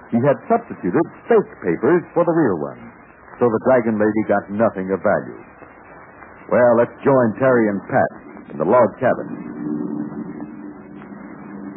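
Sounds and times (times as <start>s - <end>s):
speech: 0.1s - 5.5s, 6.5s - 9.5s
airplane engines droning as airplanes approach to land: 7.8s - 11.7s.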